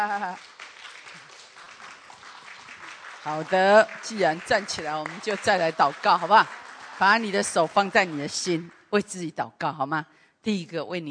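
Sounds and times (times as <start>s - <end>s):
speech: 0.0s - 0.6s, 3.2s - 11.0s
standing audience applauding to welcome a pastor: 0.0s - 8.8s.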